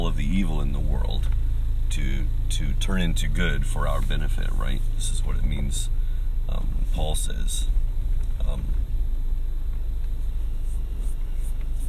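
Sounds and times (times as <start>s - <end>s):
large truck engine droning on the road: 0.0s - 11.8s
speech: 1.9s - 7.8s, 8.4s - 8.8s.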